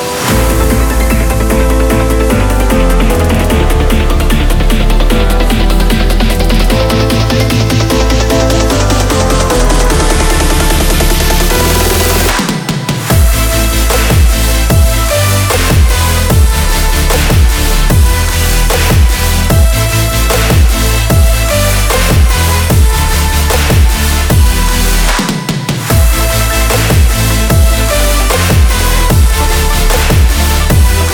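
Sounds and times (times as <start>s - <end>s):
drums: 0.1s - 16.6s, 18.7s - 29.3s
bass: 0.2s - 31.1s.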